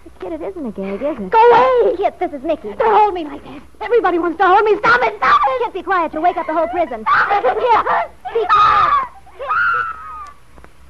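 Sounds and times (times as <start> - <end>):
speech: 0.2 - 8.9
laughter: 5.2 - 10.3
woman screaming hysterically: 6.4 - 10.4.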